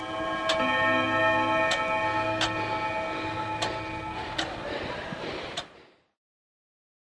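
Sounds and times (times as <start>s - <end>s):
clock ticking: 0.0s - 4.7s, 5.5s - 5.8s
steady humming drone: 0.0s - 5.6s.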